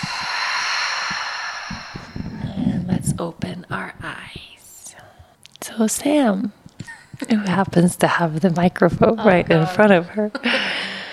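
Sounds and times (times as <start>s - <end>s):
deep breath in and out during a guided group breathing exercise: 0.0s - 2.8s, 10.5s - 11.1s
speech: 3.2s - 4.5s, 5.8s - 6.6s, 7.2s - 10.6s.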